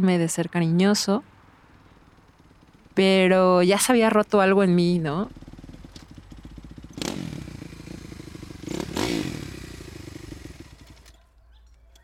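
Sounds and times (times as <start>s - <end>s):
speech: 0.0s - 1.3s, 3.0s - 5.4s
motorcycle engine idling: 1.2s - 12.0s
motorcycle throttle revs: 1.7s - 11.2s.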